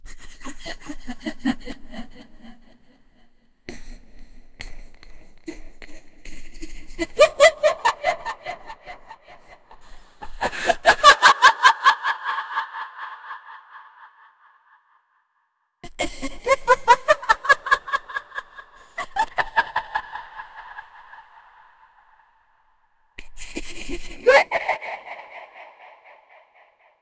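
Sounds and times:
woman laughing sinisterly in a character voice: 7.0 - 14.4, 16.0 - 21.5, 23.7 - 26.7.

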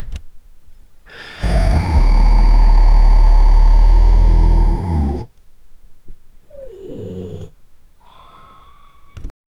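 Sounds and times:
tyrannosaur snoring: 1.1 - 5.3, 6.5 - 7.6.

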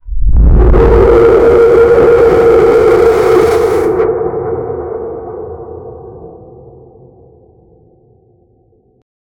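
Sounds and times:
eerie monster sound: 0.0 - 7.0.

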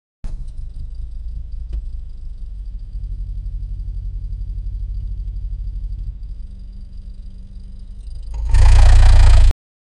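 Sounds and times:
car engine cranking: 8.2 - 9.5.

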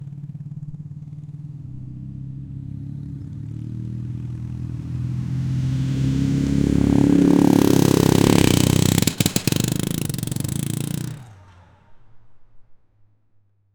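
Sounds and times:
powerful motorbike motors: 0.0 - 12.0.

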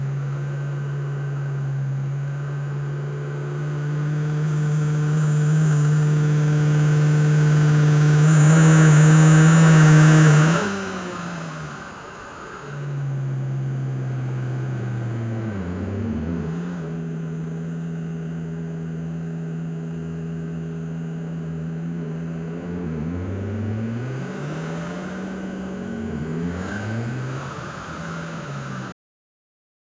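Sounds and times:
car interior driving noise: 0.0 - 29.0.

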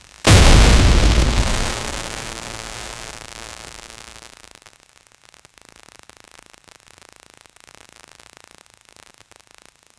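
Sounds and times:
powerful high voltage explosive burst: 0.3 - 4.2.

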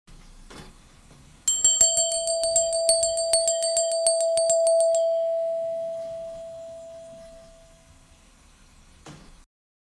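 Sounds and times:
household doorbell ringing: 1.5 - 7.6.

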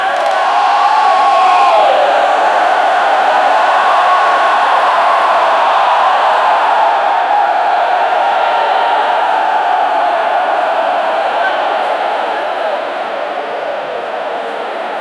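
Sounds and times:
huge concert crowd: 0.0 - 14.9.

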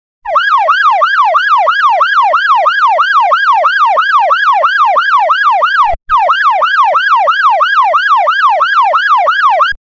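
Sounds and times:
police siren of an emergency vehicle: 0.3 - 9.8.

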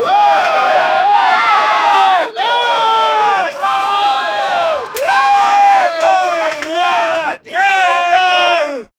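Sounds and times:
people shouting: 0.0 - 8.9.

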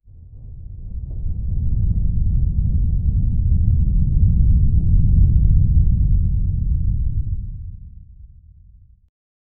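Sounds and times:
roaring lava flow of a volcano: 0.1 - 8.7.

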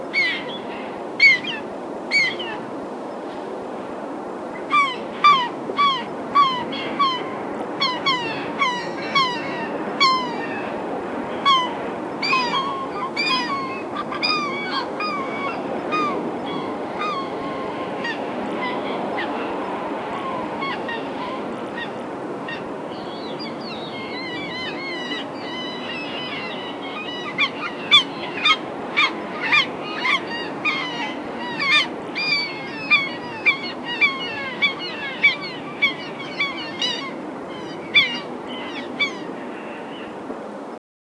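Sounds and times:
distant seagull calls: 0.1 - 2.7, 4.6 - 40.2.

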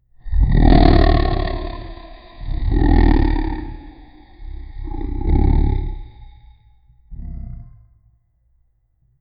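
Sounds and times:
dragon roars echoing: 0.2 - 6.6.

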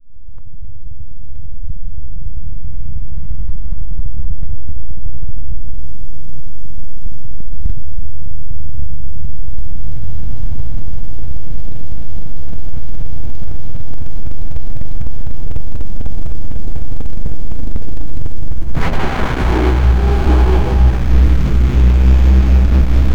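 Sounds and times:
loud cyberpunk robot starting up: 18.7 - 23.1.

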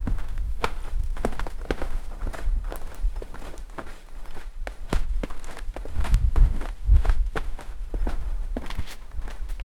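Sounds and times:
cloth rustling: 0.0 - 9.6
heavy boots walking: 0.0 - 9.6.

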